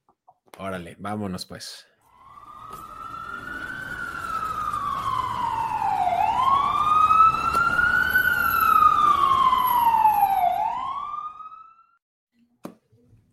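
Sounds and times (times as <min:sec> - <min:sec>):
speech: 0:00.6 - 0:01.9
emergency vehicle siren wailing: 0:02.1 - 0:12.0.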